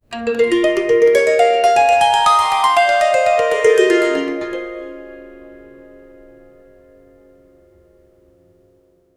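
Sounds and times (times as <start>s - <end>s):
fast ascending harp arpeggio: 0.1s - 6.2s.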